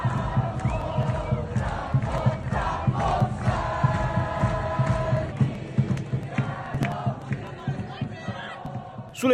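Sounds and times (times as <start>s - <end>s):
large crowd of football fans chanting and singing in the street: 0.0s - 9.3s.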